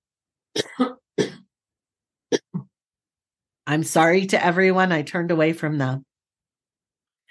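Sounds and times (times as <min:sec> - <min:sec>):
quick harsh coughs: 0:00.6 - 0:01.5
speech: 0:00.8 - 0:01.0, 0:03.7 - 0:06.1.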